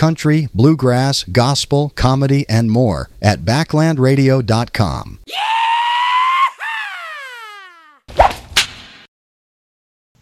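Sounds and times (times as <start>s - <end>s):
speech: 0.0s - 5.8s
whip cracks: 8.1s - 9.1s.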